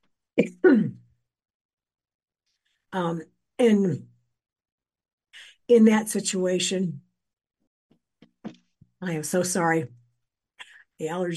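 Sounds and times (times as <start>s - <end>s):
person clearing throat from a tickle in the throat: 0.4s - 1.0s
speech: 0.4s - 1.0s, 2.9s - 4.1s, 5.7s - 7.0s, 9.0s - 10.0s, 11.0s - 11.3s.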